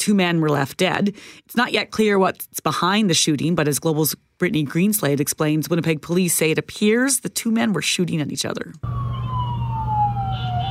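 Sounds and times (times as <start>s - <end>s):
speech: 0.0s - 9.1s
emergency vehicle siren wailing: 8.8s - 10.7s.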